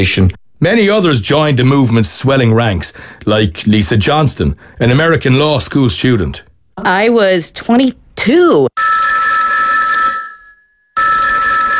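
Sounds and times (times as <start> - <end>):
speech: 0.0 - 9.2
loud metallic telephone bell ringing: 8.8 - 11.7.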